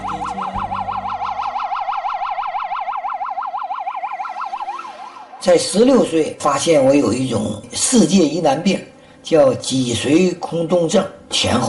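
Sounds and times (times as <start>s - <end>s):
low engine rumble: 0.0s - 3.2s
loud ambulance siren wailing in a fast yelp: 0.0s - 6.2s
speech: 5.4s - 11.6s.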